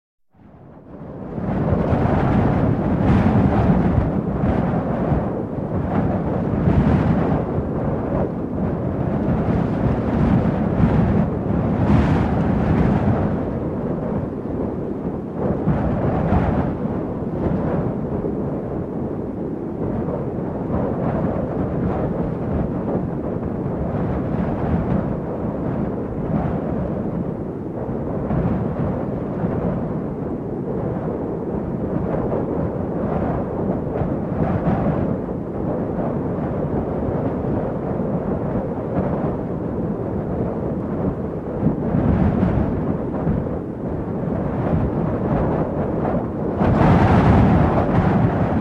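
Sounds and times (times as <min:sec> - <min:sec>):
heavy wind gusts with low roar: 0:00.4 - 0:48.5.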